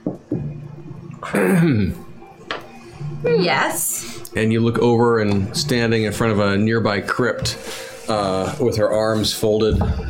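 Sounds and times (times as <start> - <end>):
person clearing throat: 1.2 - 2.0
speech: 1.2 - 2.0, 3.2 - 10.0.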